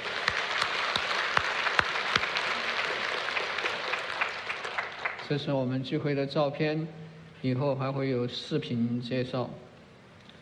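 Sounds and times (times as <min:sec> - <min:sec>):
audience applause at a church gathering: 0:00.0 - 0:05.3
speech: 0:05.3 - 0:09.6.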